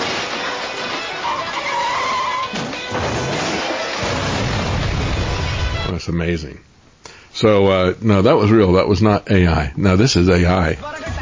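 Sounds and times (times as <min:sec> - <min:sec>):
vehicle slamming into cars and trucks with heavy crash: 0:00.0 - 0:06.0, 0:10.8 - 0:11.2
vehicle skidding with loud tire squeal: 0:00.6 - 0:04.3
speech: 0:06.1 - 0:06.7, 0:07.4 - 0:11.0.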